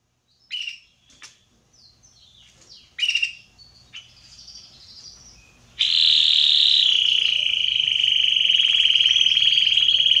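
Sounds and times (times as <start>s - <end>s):
Red Belgian canary singing: 0.0s - 10.1s.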